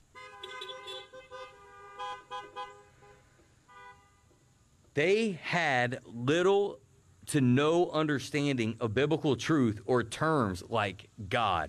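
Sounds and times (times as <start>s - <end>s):
car horns honking: 0.0s - 4.4s
speech: 5.0s - 11.6s.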